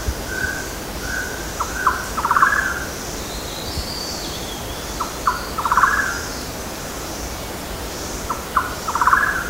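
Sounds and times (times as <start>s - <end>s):
steady hiss of background noise: 0.0s - 9.4s
golden-naped barbet calls with rattling trill on Mount Kinabalu: 0.4s - 2.8s, 5.0s - 6.2s, 8.3s - 9.4s.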